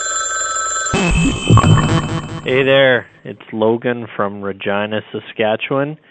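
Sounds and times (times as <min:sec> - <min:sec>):
telephone ringing with a short electronic trill: 0:00.0 - 0:03.0
speech: 0:01.0 - 0:06.1.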